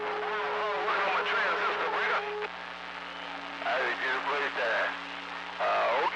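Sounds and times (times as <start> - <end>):
small transistor radio whistling and squealing between stations: 0.1 - 2.5, 3.7 - 6.1.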